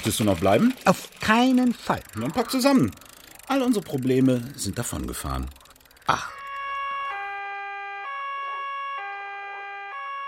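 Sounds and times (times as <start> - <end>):
speech: 0.0 - 6.4
police car siren two-tone: 6.3 - 10.2.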